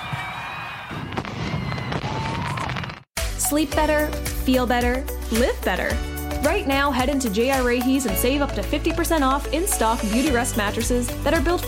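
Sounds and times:
fireworks bursting, crackling and popping: 0.9s - 3.1s
speech: 3.5s - 11.6s.

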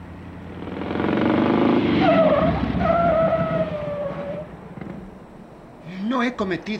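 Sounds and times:
old car brakes squealing as it pulls to a stop: 0.0s - 5.3s
old car engine rumbling: 0.0s - 5.5s
speech: 6.3s - 6.7s.

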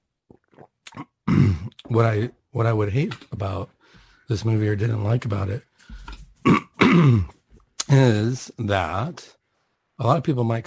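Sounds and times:
small throaty noises: 0.0s - 2.5s, 5.6s - 8.3s
harsh cough: 1.3s - 1.7s, 6.4s - 7.4s
speech: 1.3s - 9.4s, 10.0s - 10.6s.

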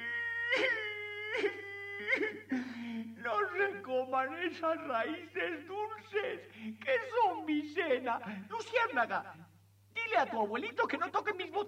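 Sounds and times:
person wailing in loud exaggerated theatrical sobs: 0.0s - 3.6s
speech: 3.6s - 9.5s, 10.1s - 11.6s.

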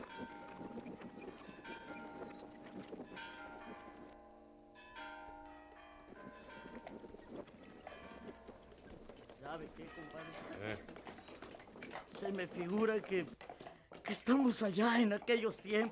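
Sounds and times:
church bells ringing joyfully: 0.0s - 10.9s
speech: 9.5s - 11.0s, 12.2s - 13.4s, 14.1s - 15.8s.

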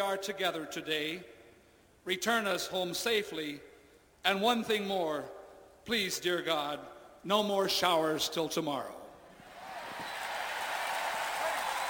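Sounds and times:
speech: 0.0s - 1.4s, 2.0s - 9.0s
large crowd applauding in reaction to a speaker: 9.4s - 11.8s.

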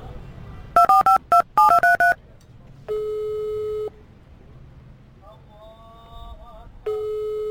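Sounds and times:
electronic phone busy signal: 0.8s - 2.2s, 2.9s - 3.9s, 6.9s - 7.4s
touch-tone phone dialing beeps: 0.8s - 2.2s, 2.9s - 3.9s.

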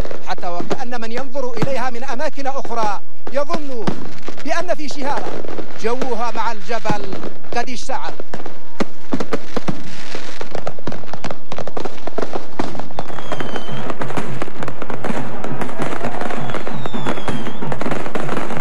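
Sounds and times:
fireworks and firecrackers crackling in celebration of the Day of Wilayah: 0.0s - 18.6s
speech: 0.9s - 8.6s
whistling firework rockets rising: 10.6s - 18.6s.

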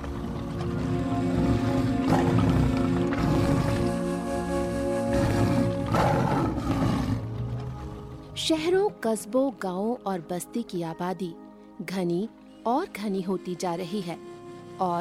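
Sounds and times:
tiger roaring: 0.9s - 8.0s
speech: 8.5s - 14.9s.

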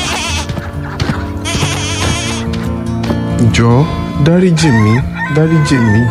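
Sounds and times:
female goat bleating: 0.0s - 0.6s, 1.4s - 2.5s
speech: 3.5s - 6.0s.

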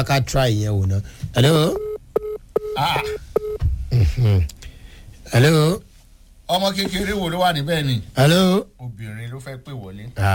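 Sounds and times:
speech: 0.0s - 1.9s, 2.8s - 3.2s, 4.0s - 4.6s, 5.3s - 5.9s, 6.5s - 10.3s
telephone keypad tones dialing a number: 3.4s - 3.6s.

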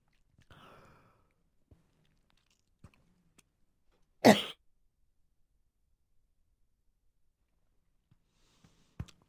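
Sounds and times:
person coughing with something caught in the throat: 4.2s - 4.6s.

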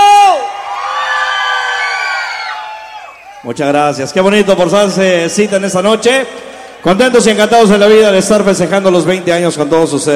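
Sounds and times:
high whoop from concert crowd: 0.0s - 3.4s
large concert crowd cheering and applauding at night in the port of Veracruz: 0.0s - 7.0s
speech: 3.5s - 10.1s.

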